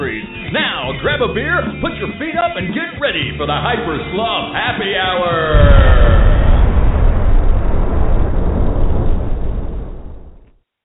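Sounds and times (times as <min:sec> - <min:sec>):
speech: 0:01.0 - 0:06.3
long rumbling explosion with crackle: 0:05.5 - 0:10.5.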